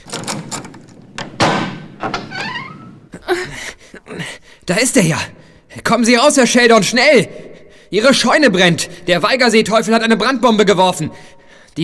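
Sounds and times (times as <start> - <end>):
locked cellar door creaking as it gives way: 0.0 - 3.2
speech: 4.7 - 11.8.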